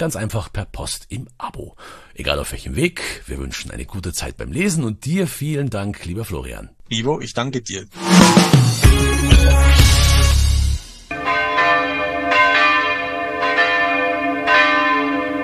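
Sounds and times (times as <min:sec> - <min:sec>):
speech: 0:00.0 - 0:09.8
hand-rung church bells pealing: 0:11.1 - 0:15.4.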